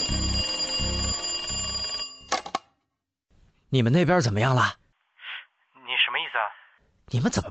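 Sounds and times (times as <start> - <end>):
police station office telephone ringing: 0.0 - 2.6
speech: 3.7 - 4.8, 7.1 - 7.5.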